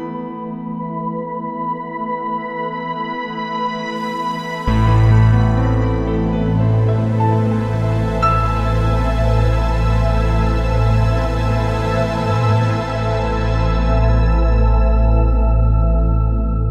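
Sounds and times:
synth pad: 0.3s - 16.7s
sub bass: 4.6s - 16.7s.

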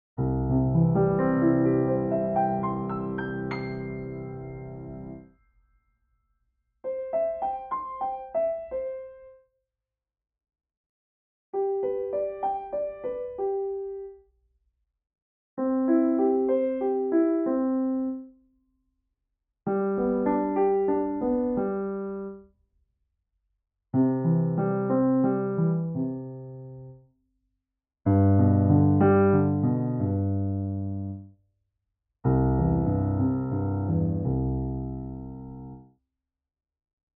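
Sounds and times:
dry piano: 0.2s - 5.3s, 6.8s - 9.4s, 11.6s - 14.2s, 15.6s - 18.3s, 19.7s - 22.4s, 24.0s - 27.0s, 28.1s - 31.3s, 32.2s - 35.9s.

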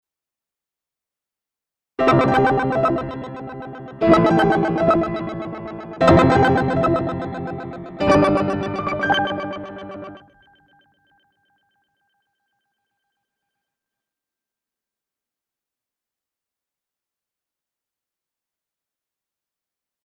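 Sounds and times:
rapid-fire synth piano through a delay unit: 2.0s - 10.7s.

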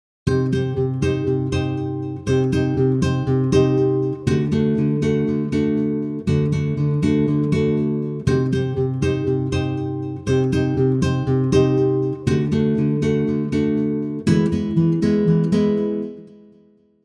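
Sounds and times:
rhythmic acoustic guitars playing harmony for scoring: 0.3s - 16.8s.

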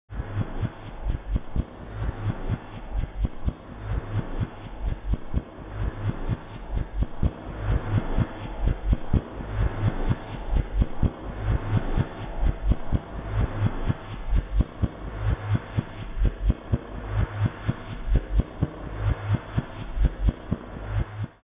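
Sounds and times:
drums through a tape echo effect played in reverse: 0.1s - 21.4s.

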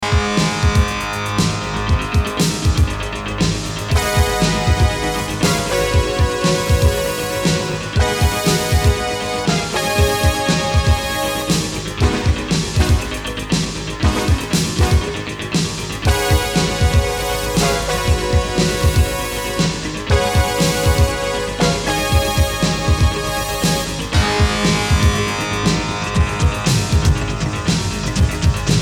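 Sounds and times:
synthesizer film music: 0.0s - 28.7s.

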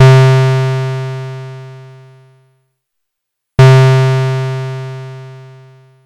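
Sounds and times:
Erica Synths DB-01 square wave tone: 0.0s - 2.2s, 3.6s - 6.0s.

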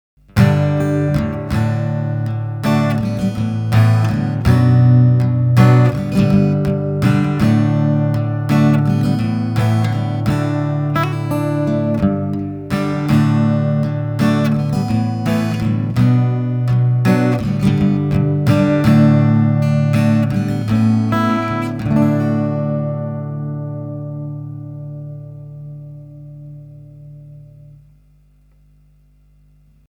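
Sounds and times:
ZOOM AC-3 chorus effect output: 0.2s - 29.8s.

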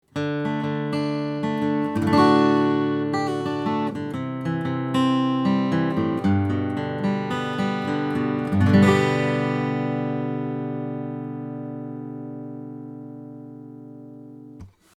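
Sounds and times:
acoustic guitar picking at the 15th fret: 0.2s - 14.9s.

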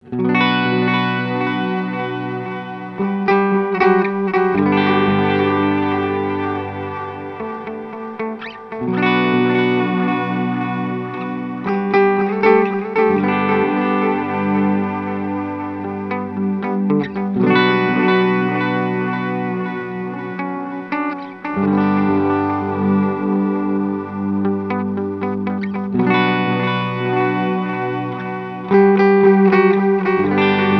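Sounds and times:
Earthquaker Devices Disaster Transport delay pedal at max delay time and mix: 0.0s - 30.7s.

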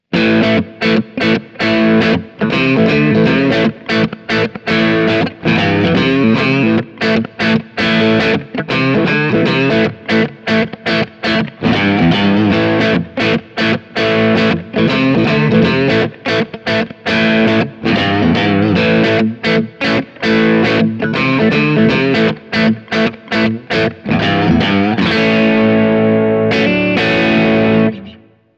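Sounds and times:
guitar through EMG T pickup system crunch tone, middle position: 0.0s - 28.4s.

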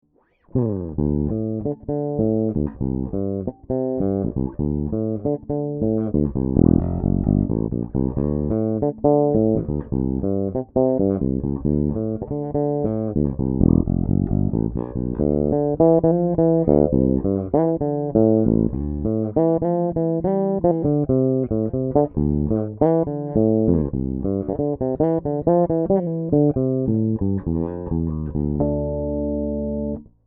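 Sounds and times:
fingerstyle guitar on bridge pickup: 0.1s - 30.2s.

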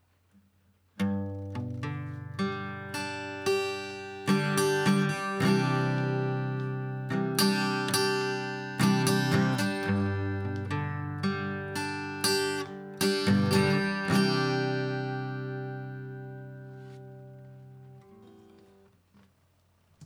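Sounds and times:
guitar recorded through an audio interface: 1.0s - 19.2s.

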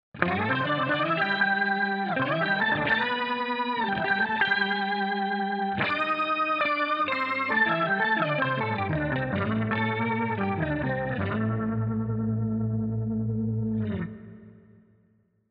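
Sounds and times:
tonewheel organ: 0.2s - 14.1s.

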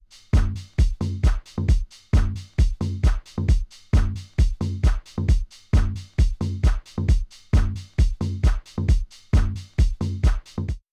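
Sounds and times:
music loop: 0.3s - 10.8s.

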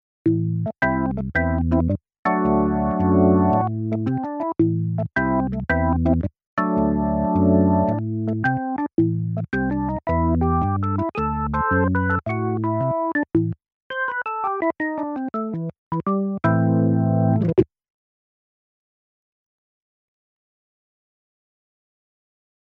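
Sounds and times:
electronic organ: 0.8s - 17.6s.

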